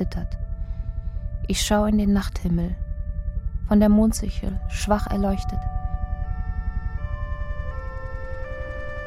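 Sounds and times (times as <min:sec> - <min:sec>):
speech: 0:00.0 - 0:00.4, 0:01.5 - 0:02.8, 0:03.7 - 0:05.7
heavy throbbing low rumble: 0:00.0 - 0:09.0
emergency vehicle sirens wailing: 0:05.5 - 0:09.0.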